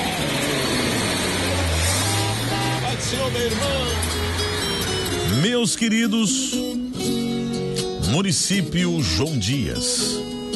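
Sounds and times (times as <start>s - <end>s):
Chevrolet Chevette car engine revving: 0.0s - 5.6s
speech: 3.1s - 4.5s, 5.3s - 7.2s, 8.1s - 10.5s.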